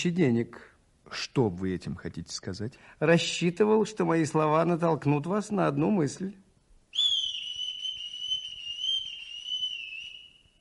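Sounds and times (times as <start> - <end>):
speech: 0.0 - 6.4
person whistling outside on the street: 7.0 - 10.5.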